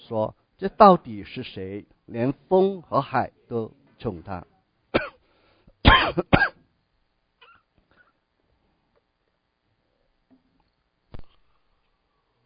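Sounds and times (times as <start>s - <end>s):
speech: 0.1s - 5.0s, 6.1s - 6.5s
person clearing throat: 5.0s - 5.2s, 5.8s - 6.6s
person coughing in rough bursts: 5.0s - 5.2s, 5.8s - 6.6s.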